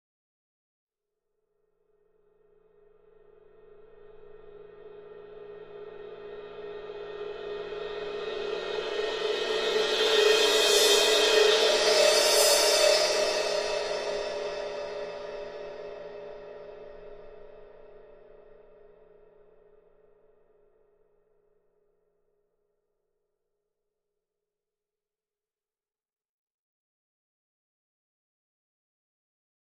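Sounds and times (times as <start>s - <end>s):
large cymbal crescendo: 3.1s - 19.5s.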